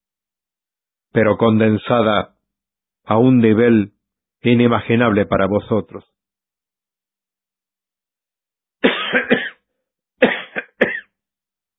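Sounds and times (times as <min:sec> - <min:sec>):
speech: 0:01.1 - 0:02.4, 0:03.0 - 0:06.2
person coughing harsh raspy coughs: 0:08.8 - 0:09.6, 0:10.2 - 0:11.2.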